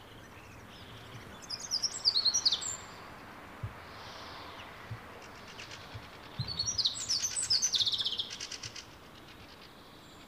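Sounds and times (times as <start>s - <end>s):
wild common chaffinch singing in pre-breeding season: 0.0s - 3.3s, 4.0s - 10.2s.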